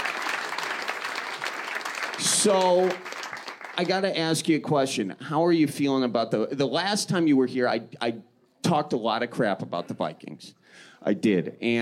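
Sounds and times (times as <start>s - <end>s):
audience applause welcoming a comedian to the stage: 0.0s - 4.4s
speech: 2.2s - 3.1s, 3.8s - 11.7s.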